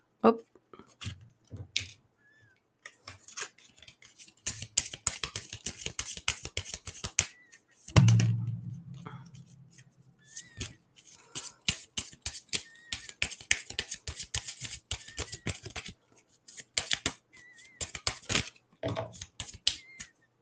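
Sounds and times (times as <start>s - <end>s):
speech: 0.2s - 0.5s
deck of cards being shuffled with rapid papery flicking: 3.1s - 8.0s, 10.3s - 18.6s, 19.1s - 20.1s
soft low thump: 8.0s - 9.8s.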